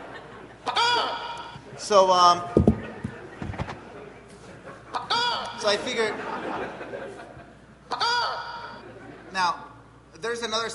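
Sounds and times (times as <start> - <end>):
laughter: 0.0 - 1.6, 2.7 - 9.4
squeezed rubber toy chicken squawking: 0.7 - 1.6, 5.0 - 5.7, 7.9 - 8.8
speech: 1.8 - 2.6, 5.6 - 7.3, 9.4 - 9.6, 10.2 - 10.7.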